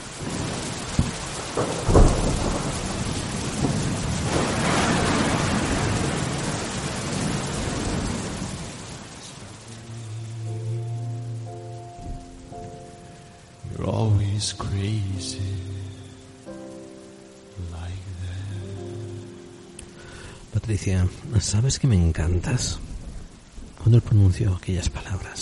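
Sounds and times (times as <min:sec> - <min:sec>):
thunder cracking sharply and rolling in deep rumbles: 0:00.0 - 0:10.5, 0:20.4 - 0:25.4
steady rain hissing: 0:00.0 - 0:25.4
speech: 0:01.6 - 0:01.9, 0:14.4 - 0:15.7, 0:20.7 - 0:22.9, 0:23.8 - 0:25.4
soft sustained musical tones: 0:09.3 - 0:20.8.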